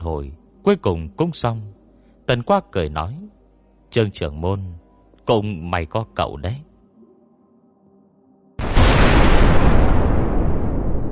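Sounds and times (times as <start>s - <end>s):
speech: 0.1s - 6.7s
dynamite explosion blasting a hole in a Buddha statue: 8.6s - 11.1s.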